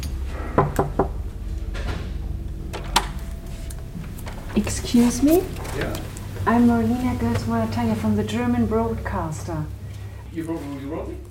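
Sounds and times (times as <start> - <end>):
quiet hum: 0.0 - 11.2
knocking on an office door: 0.6 - 1.2
speech: 4.6 - 11.2.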